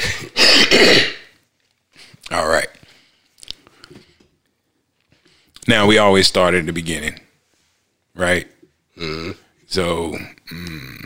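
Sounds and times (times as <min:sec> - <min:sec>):
person clearing throat: 0:00.0 - 0:01.3, 0:09.0 - 0:09.4, 0:10.5 - 0:11.0
speech: 0:02.3 - 0:02.7, 0:05.7 - 0:07.2, 0:08.2 - 0:11.0.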